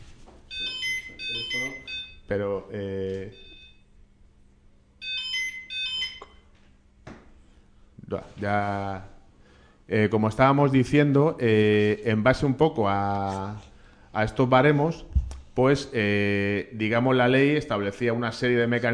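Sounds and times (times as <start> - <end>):
telephone ringing with warbling electronic tones: 0.5 - 2.2, 3.4 - 3.8, 5.0 - 6.5
speech: 1.5 - 3.5, 8.1 - 9.1, 9.9 - 18.9.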